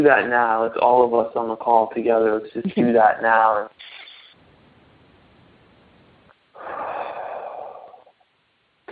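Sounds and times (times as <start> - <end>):
speech: 0.0 - 4.0
deep breath during a guided breathing exercise: 6.5 - 8.2.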